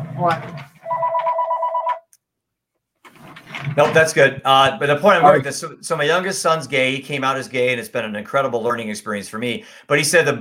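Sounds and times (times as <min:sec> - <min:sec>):
speech: 0:00.2 - 0:00.7, 0:03.8 - 0:10.3
telephone ringing: 0:00.8 - 0:02.1.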